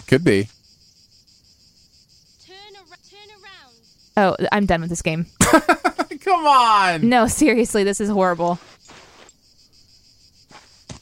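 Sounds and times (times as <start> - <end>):
cicadas buzzing: 0.0 - 11.0
speech: 0.1 - 0.6, 4.2 - 8.7
laughter: 5.4 - 7.0.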